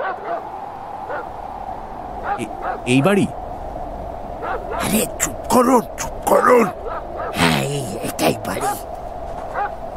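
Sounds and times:
large black shaggy dog barking: 0.0 - 0.4, 2.2 - 2.8, 4.4 - 4.9, 6.8 - 7.4, 9.5 - 9.8
speech: 2.4 - 3.4, 4.6 - 8.9.

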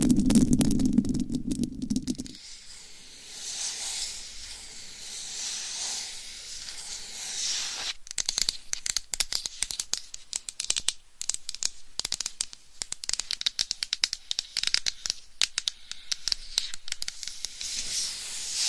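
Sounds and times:
fine scratching: 0.1 - 8.0, 16.5 - 18.6
steady hiss: 0.5 - 18.6
massage rubbing on a microphone: 1.9 - 8.0, 17.6 - 18.6.

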